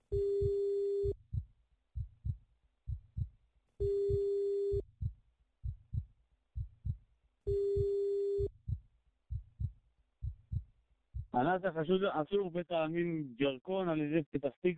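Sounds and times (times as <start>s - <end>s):
low rhythmic heartbeat-like thumping: 0.0s - 11.4s
phone ringback tone calling a mobile number: 0.1s - 1.2s, 3.8s - 4.8s, 7.5s - 8.5s
speech: 11.5s - 14.7s.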